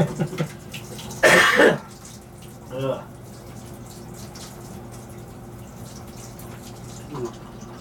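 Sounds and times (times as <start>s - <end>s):
steady low hum: 0.0s - 7.7s
person coughing: 1.2s - 1.9s.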